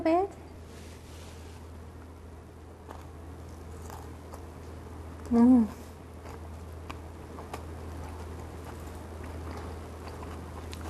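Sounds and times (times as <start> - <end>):
biting and chewing extra-crispy fried food dipped in soy sauce: 2.8 - 10.8
speech: 5.3 - 5.8.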